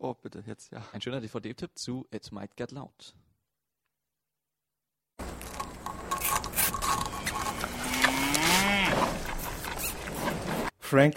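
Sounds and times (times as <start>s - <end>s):
speech: 0.0s - 3.2s, 10.9s - 11.1s
cow mooing: 6.9s - 10.4s.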